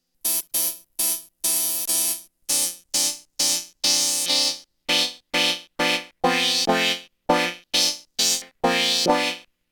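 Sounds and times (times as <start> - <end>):
HardSID chiptune music: 4.9 - 9.4.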